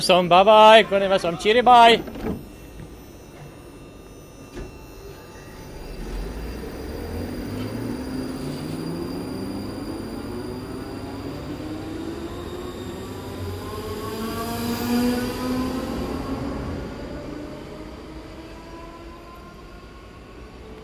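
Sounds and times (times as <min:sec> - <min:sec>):
speech: 0:00.0 - 0:02.4
train electric motors whining upward in pitch: 0:00.7 - 0:20.8
train wheels rumbling on track: 0:05.7 - 0:20.8.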